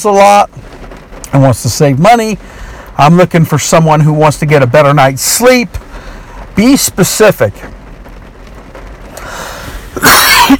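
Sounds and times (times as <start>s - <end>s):
speech: 0.0s - 0.6s, 1.3s - 5.8s, 6.6s - 7.8s
person coughing: 10.0s - 10.5s.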